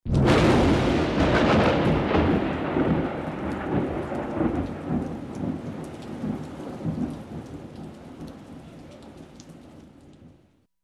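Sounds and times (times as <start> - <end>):
strong thunder clap: 0.0 - 8.5.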